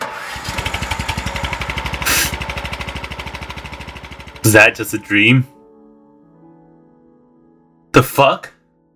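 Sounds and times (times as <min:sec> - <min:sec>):
lawnmower engine starting up and chugging: 0:00.0 - 0:05.1
hiss: 0:02.0 - 0:02.4
speech: 0:04.4 - 0:05.6, 0:08.0 - 0:08.6.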